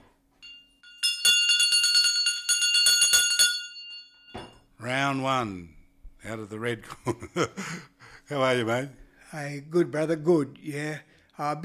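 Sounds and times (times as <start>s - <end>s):
boxing ring bell clanging: 0.4s - 4.7s
speech: 4.8s - 11.6s.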